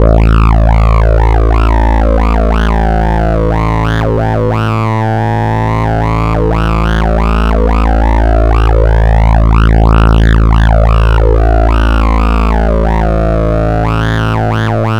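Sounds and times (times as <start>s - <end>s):
filtered bass: 0.0s - 14.9s.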